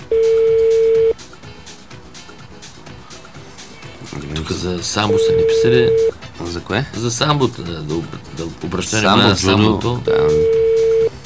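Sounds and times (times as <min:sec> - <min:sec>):
telephone ring tone: 0:00.0 - 0:01.2, 0:05.0 - 0:06.2, 0:09.3 - 0:11.2
faint noise: 0:00.0 - 0:11.2
speech: 0:04.5 - 0:10.6.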